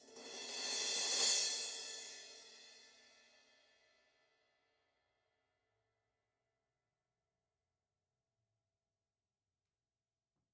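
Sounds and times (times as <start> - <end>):
crash cymbal flourish: 0.0 - 3.3.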